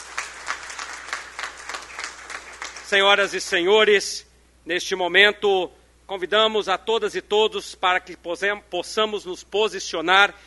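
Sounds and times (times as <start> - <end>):
crowd clapping at a civic ceremony: 0.0 - 3.7
speech: 2.9 - 10.4.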